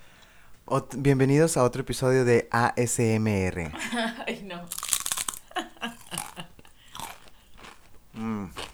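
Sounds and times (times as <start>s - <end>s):
speech: 0.7s - 4.8s
laughter: 3.7s - 4.5s, 5.4s - 6.8s
person chewing crunchy food: 4.7s - 8.7s.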